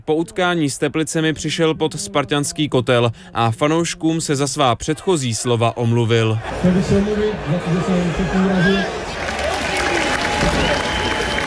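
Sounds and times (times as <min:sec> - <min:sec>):
speech: 0:00.0 - 0:09.1
football fans clapping across a stadium: 0:09.0 - 0:11.4.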